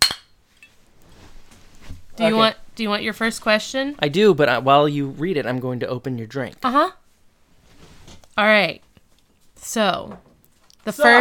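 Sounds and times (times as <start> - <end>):
drinking glasses clinking in a toast: 0.0 - 0.8
speech: 2.2 - 7.0, 8.4 - 8.8, 9.6 - 11.1.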